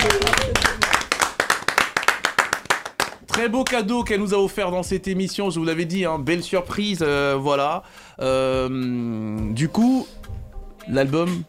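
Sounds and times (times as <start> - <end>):
television studio audience clapping for a singer: 0.0 - 4.0
speech: 3.4 - 10.2, 10.9 - 11.4.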